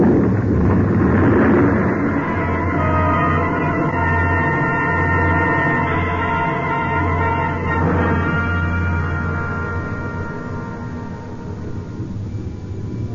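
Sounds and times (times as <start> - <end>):
avalanche of snow and ice rumbling down from a ridge: 0.0 - 13.1.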